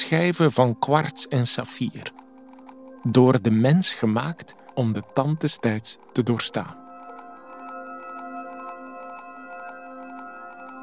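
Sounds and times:
very large steel-geared mechanical clock ticking: 0.0s - 7.2s
speech: 0.1s - 2.2s, 3.0s - 6.8s.

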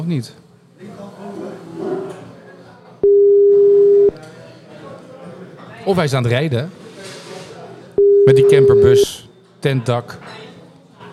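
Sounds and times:
speech: 0.0s - 0.5s, 5.8s - 6.8s, 8.3s - 10.3s
steady telephone beep as a rejected call goes to voicemail: 3.0s - 4.2s, 8.0s - 9.1s.

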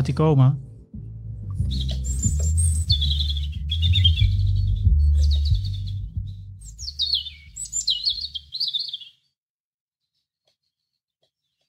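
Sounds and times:
speech: 0.0s - 0.6s
steady low rumble: 0.0s - 7.7s
European robin singing: 1.5s - 9.4s.

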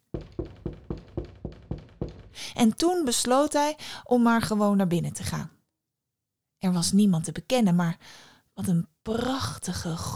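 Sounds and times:
knocking on a temple door: 0.0s - 2.8s
speech: 2.4s - 5.6s, 6.6s - 10.1s.

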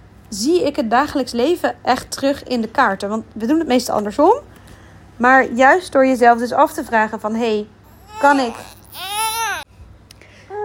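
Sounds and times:
speech: 0.3s - 4.5s, 5.2s - 9.1s
fussy baby crying: 7.9s - 9.7s.

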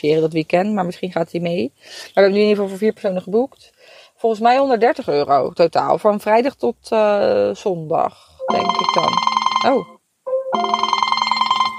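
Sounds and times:
speech: 0.0s - 9.9s
phone ringtone from an incoming call: 8.4s - 11.7s.

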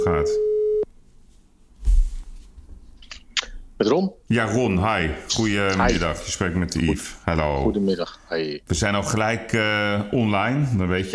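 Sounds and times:
speech: 0.0s - 0.5s, 3.8s - 11.1s
telephone beep from an outgoing call: 0.3s - 0.8s.

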